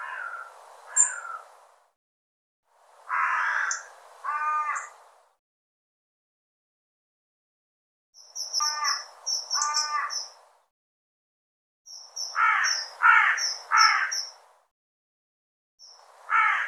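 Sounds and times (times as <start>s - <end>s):
bird giving harsh harmonic calls: 0.0s - 1.4s, 3.1s - 4.9s, 8.3s - 10.4s, 11.9s - 14.4s.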